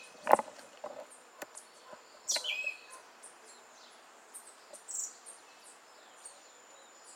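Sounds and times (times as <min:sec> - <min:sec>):
Western red legged thrush: 0:00.0 - 0:03.0.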